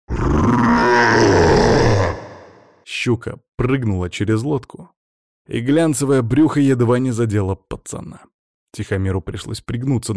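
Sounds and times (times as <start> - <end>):
monstrous creature roaring during a fight: 0.1 - 2.8
speech: 3.0 - 10.1.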